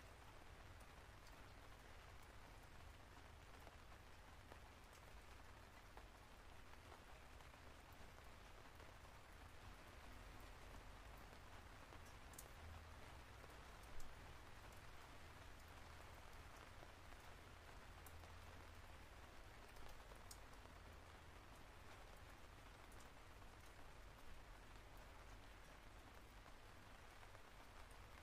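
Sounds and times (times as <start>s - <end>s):
steady light rain pattering on a window and roof: 0.0s - 28.2s.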